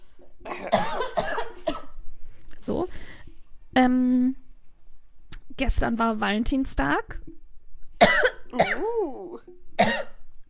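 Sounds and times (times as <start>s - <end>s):
speech: 0.2s - 1.1s, 5.6s - 7.3s
person coughing: 0.4s - 1.9s, 8.0s - 9.1s, 9.8s - 10.2s.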